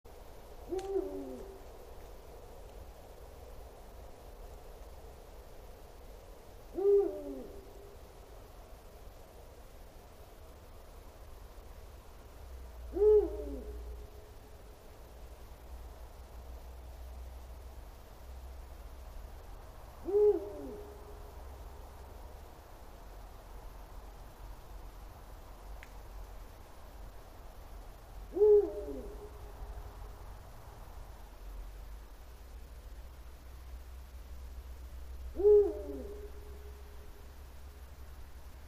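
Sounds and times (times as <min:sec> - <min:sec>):
night birds: 0:00.1 - 0:38.6
Bubo bubo eagle owl: 0:00.6 - 0:01.9, 0:06.7 - 0:08.1, 0:12.9 - 0:14.4, 0:20.0 - 0:21.4, 0:28.3 - 0:29.6, 0:35.3 - 0:37.2.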